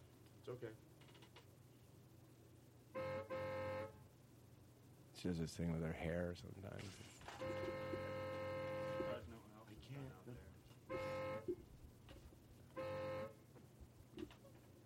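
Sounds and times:
speech: 0.4 - 0.9, 5.2 - 8.1, 9.8 - 11.7
car horn honked by a woman: 3.0 - 4.0, 7.4 - 9.2, 10.9 - 11.6, 12.7 - 13.4.

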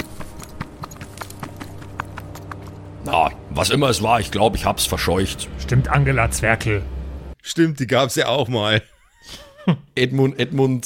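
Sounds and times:
quick evenly spaced footsteps scurrying: 0.0 - 3.3
speech: 3.0 - 9.4, 10.0 - 10.8.

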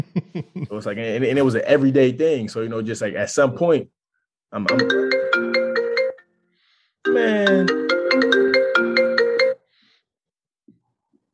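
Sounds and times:
speech: 0.0 - 5.2
phone ringtone from incoming call with short bright electronic chime: 4.7 - 6.3, 7.1 - 9.7.

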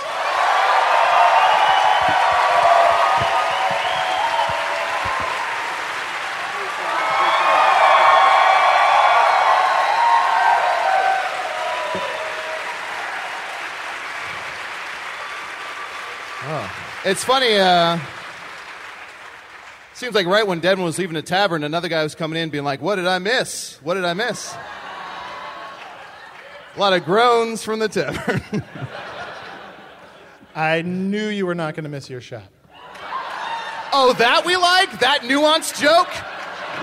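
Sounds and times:
scattered cheers: 0.0 - 18.1, 32.7 - 36.8
live crowd clapping: 0.0 - 21.2, 24.7 - 27.1, 32.8 - 36.8
speech: 17.1 - 18.2, 20.0 - 24.8, 26.8 - 29.0, 30.6 - 32.6, 34.0 - 36.8
laughter: 28.0 - 30.6, 32.9 - 36.8.

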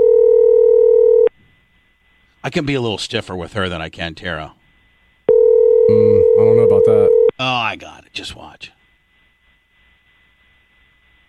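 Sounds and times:
telephone dial tone: 0.0 - 1.3, 5.3 - 7.3
speech: 2.4 - 4.6, 5.9 - 8.8.

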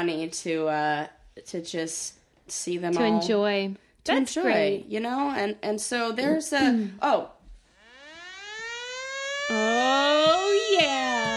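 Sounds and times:
speech: 0.0 - 7.4
siren sound effect wailing: 7.8 - 11.3.

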